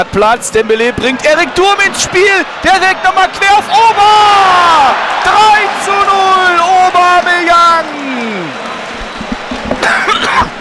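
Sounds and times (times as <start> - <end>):
speech: 0.0 - 8.6
harsh raspy cough from a scratchy throat: 9.8 - 10.5.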